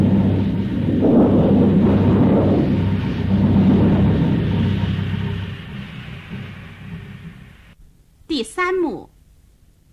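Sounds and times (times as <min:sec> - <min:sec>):
thunder rumbling in a stage drama sound effect: 0:00.0 - 0:07.8
wind roaring in a stage drama sound effect: 0:00.0 - 0:07.8.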